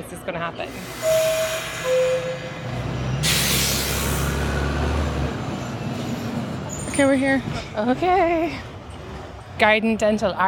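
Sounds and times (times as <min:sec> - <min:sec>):
speech: 0:00.0 - 0:02.8, 0:07.0 - 0:08.7, 0:09.6 - 0:10.4
moving train rolling rumble with faint tonal whines: 0:00.0 - 0:10.4
train air brakes hissing: 0:00.7 - 0:05.1.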